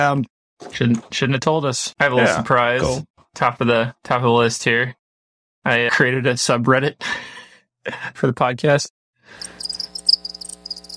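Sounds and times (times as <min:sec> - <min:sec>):
speech: 0:00.0 - 0:05.0, 0:05.6 - 0:09.6
crickets chirping: 0:09.4 - 0:10.9.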